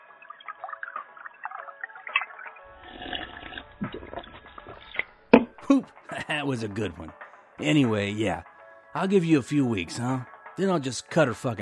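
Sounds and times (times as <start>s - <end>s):
drink pouring into a glass: 0.1s - 5.0s
speech: 5.7s - 11.6s.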